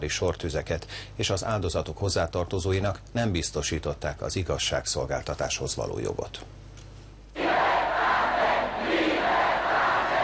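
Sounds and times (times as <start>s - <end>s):
speech: 0.0s - 6.7s
huge crowd chanting: 7.4s - 10.2s.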